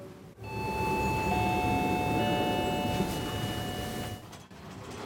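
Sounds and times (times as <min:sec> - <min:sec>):
glass passenger elevator running on cables in Berlin's state parliament building: 0:00.4 - 0:04.4.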